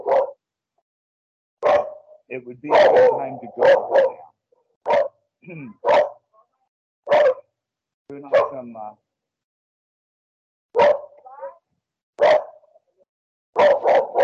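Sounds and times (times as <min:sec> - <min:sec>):
dog barking: 0:00.0 - 0:00.4, 0:01.6 - 0:05.2, 0:05.8 - 0:06.3, 0:07.1 - 0:07.5, 0:08.3 - 0:08.7, 0:10.7 - 0:11.6, 0:12.2 - 0:12.8, 0:13.6 - 0:14.2
dog whiny yelps: 0:00.0 - 0:00.4, 0:01.6 - 0:02.0, 0:02.7 - 0:04.3, 0:04.9 - 0:05.1, 0:07.1 - 0:07.4, 0:10.8 - 0:11.6, 0:12.2 - 0:12.6, 0:13.6 - 0:14.2
speech: 0:02.3 - 0:04.2, 0:05.4 - 0:06.0, 0:08.1 - 0:09.1.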